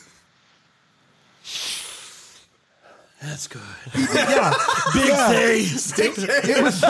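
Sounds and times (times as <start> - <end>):
perfume atomizer spray hiss: 1.4 - 2.6
person sniffing: 1.4 - 2.6
speech: 3.2 - 6.8
laughter: 3.9 - 6.8.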